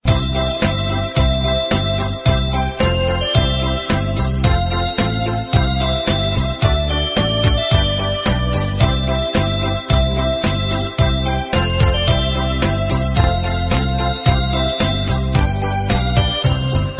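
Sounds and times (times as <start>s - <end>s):
Christmas instrumental ringtone: 0.1s - 16.9s.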